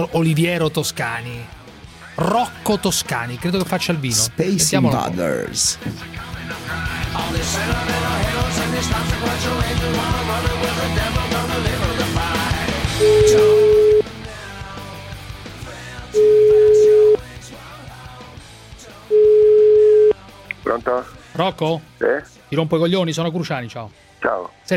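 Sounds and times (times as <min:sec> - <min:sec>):
speech: 0:00.0 - 0:01.6, 0:02.2 - 0:13.8, 0:20.8 - 0:24.7
music: 0:00.0 - 0:24.7
telephone ringback tone while calling someone: 0:13.0 - 0:14.0, 0:16.2 - 0:17.2, 0:19.1 - 0:20.1.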